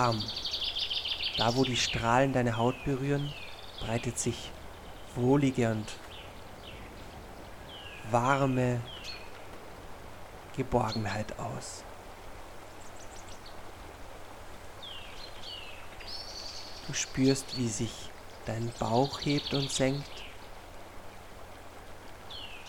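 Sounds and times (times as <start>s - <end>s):
person speaking calmly: 0.0s - 0.4s, 1.4s - 6.1s, 8.0s - 9.0s, 10.5s - 11.9s, 16.9s - 20.2s
speech: 0.0s - 0.4s, 1.4s - 4.6s, 5.2s - 6.0s, 8.1s - 9.0s, 10.6s - 11.9s, 16.9s - 20.2s
faint bird chirps: 0.0s - 9.5s, 14.8s - 20.5s
small brook babbling: 0.0s - 22.6s.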